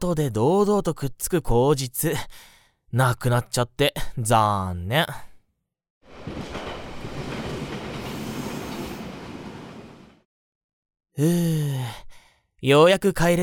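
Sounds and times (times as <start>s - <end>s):
speech: 0.0s - 5.3s, 11.2s - 13.4s
train rumbling and clattering along the rails: 6.1s - 10.2s.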